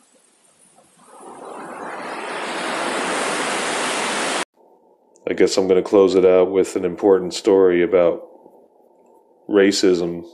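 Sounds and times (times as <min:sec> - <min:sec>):
surf of ocean waves breaking on shore: 0:01.0 - 0:04.4
speech: 0:05.3 - 0:08.3, 0:09.5 - 0:10.3.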